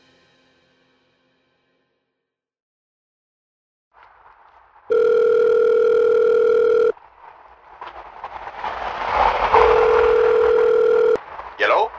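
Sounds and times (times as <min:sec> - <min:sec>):
telephone dial tone from a recorded phone call: 0:04.9 - 0:07.0, 0:09.6 - 0:11.2.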